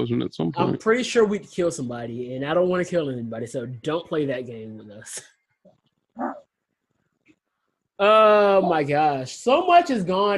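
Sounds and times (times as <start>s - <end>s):
speech: 0.0s - 5.4s, 6.2s - 6.4s, 8.0s - 10.3s
dog yelping: 6.2s - 6.5s.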